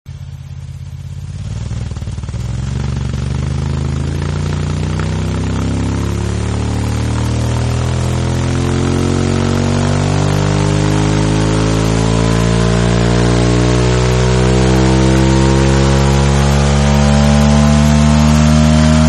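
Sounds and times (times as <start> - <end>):
motorcycle going fast: 0.5 - 19.0.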